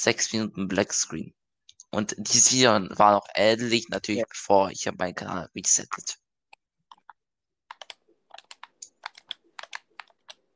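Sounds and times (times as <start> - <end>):
speech: 0.0 - 6.2
computer keyboard typing: 6.9 - 10.5.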